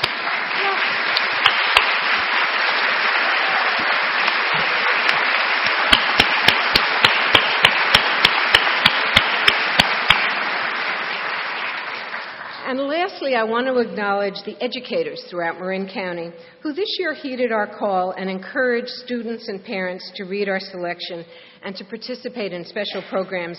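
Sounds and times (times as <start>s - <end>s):
audience applause: 0.0s - 12.6s
speech: 13.2s - 23.5s.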